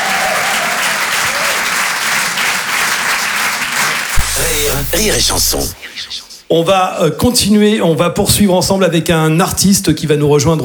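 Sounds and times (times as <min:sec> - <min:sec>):
audience applause at a live comedy and song show: 0:00.0 - 0:05.7
sharp knock: 0:04.1 - 0:05.8
speech: 0:04.8 - 0:10.6.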